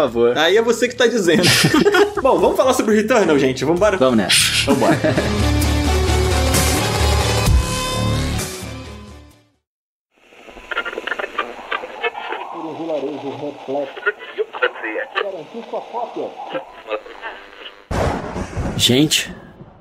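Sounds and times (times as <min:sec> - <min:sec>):
speech: 0:00.0 - 0:05.6, 0:18.8 - 0:19.4
loud burst of static: 0:01.4 - 0:02.2, 0:10.2 - 0:19.2
laughter: 0:01.4 - 0:02.4, 0:04.4 - 0:05.5, 0:10.6 - 0:17.4
music: 0:02.0 - 0:09.6
garbled radio interference warbling and crackling: 0:10.2 - 0:18.0
distorted voice fragments: 0:10.3 - 0:17.9.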